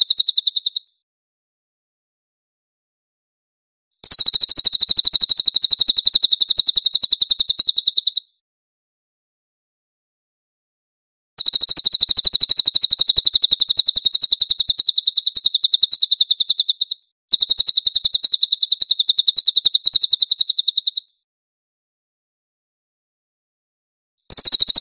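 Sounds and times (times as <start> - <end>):
cililin bird song with rattling trill: 0.0 - 0.8, 4.0 - 8.3, 11.4 - 21.1, 24.3 - 24.7.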